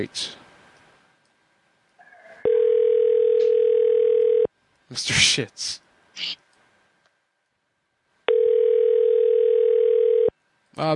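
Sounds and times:
speech: 0:00.0 - 0:00.4, 0:04.9 - 0:06.4, 0:10.8 - 0:10.9
telephone line tone on a call to a store on hold: 0:02.4 - 0:04.5, 0:08.3 - 0:10.3.

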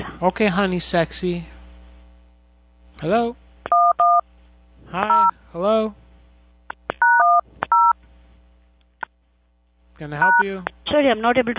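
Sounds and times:
speech: 0:00.2 - 0:01.5, 0:03.0 - 0:03.8, 0:04.9 - 0:06.0, 0:10.0 - 0:11.5
telephone keypad DTMF tones during a call: 0:03.7 - 0:04.2, 0:06.9 - 0:08.0, 0:10.2 - 0:10.5.

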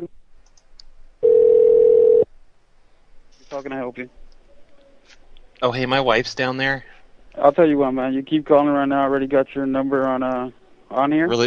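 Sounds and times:
steady telephone tone during a call to a hotel front desk: 0:01.2 - 0:02.3
speech: 0:03.6 - 0:04.2, 0:05.6 - 0:11.4.

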